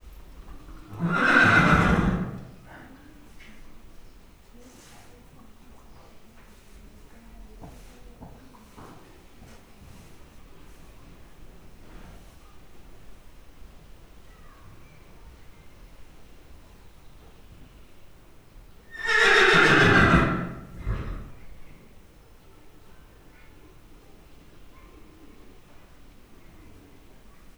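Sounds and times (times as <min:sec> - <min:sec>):
horse neighing at Miskolc zoo: 0:00.8 - 0:02.7, 0:18.9 - 0:21.4.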